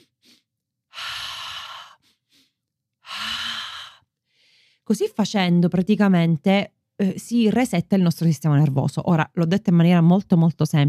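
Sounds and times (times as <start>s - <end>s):
two quick sniffing inhales: 0.0s - 0.5s, 1.6s - 2.6s
speech: 4.9s - 10.8s.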